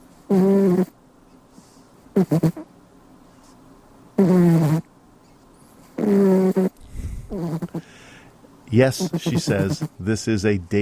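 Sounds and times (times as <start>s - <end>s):
cat snoring while asleep on a desk: 0.3s - 0.9s, 4.2s - 4.9s, 6.0s - 6.7s, 7.3s - 7.9s
speech: 2.2s - 2.6s, 8.7s - 10.8s.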